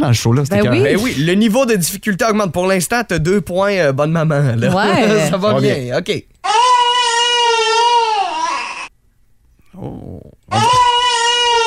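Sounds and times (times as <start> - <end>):
speech: 0.0 - 6.8, 9.8 - 10.9
infant wailing: 6.4 - 8.9, 10.5 - 11.6
infant whimpering breath: 6.4 - 8.9, 9.8 - 11.6.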